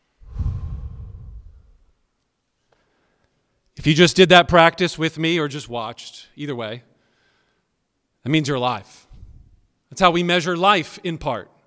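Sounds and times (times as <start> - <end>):
deep breath drawn in and let out: 0.2 - 1.9, 2.7 - 3.4, 7.0 - 7.7
speech: 3.8 - 6.9, 8.2 - 9.0, 9.9 - 11.5.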